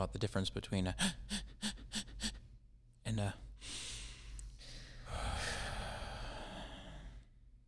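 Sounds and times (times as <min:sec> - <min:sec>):
speech: 0:00.0 - 0:01.3, 0:03.2 - 0:03.4
slow deep breath: 0:03.6 - 0:07.4.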